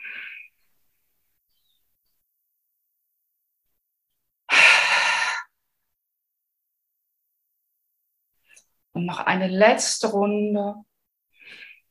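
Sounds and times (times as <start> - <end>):
deep breath out and in during a guided breathing exercise: 4.5 - 5.6, 11.3 - 11.8
speech: 9.0 - 10.9.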